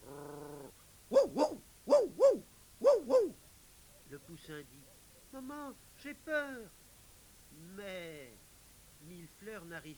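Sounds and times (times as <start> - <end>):
dog barking: 1.1 - 3.4
speech: 4.5 - 6.8, 7.5 - 8.4, 9.0 - 9.9.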